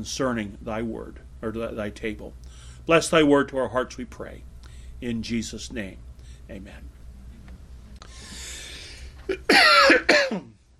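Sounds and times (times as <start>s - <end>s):
speech: 0.0s - 6.9s, 9.3s - 10.5s
soft breath: 2.4s - 2.9s, 4.6s - 5.0s, 6.2s - 6.5s, 7.2s - 9.2s
person coughing from allergy tickle in the throat: 9.3s - 10.6s.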